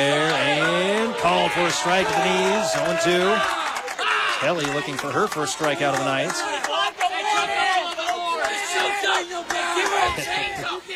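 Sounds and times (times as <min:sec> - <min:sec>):
student section crowd of young voices yelling and cheering at a ball game: 0:00.0 - 0:10.9
speech: 0:01.2 - 0:03.6, 0:04.4 - 0:06.6.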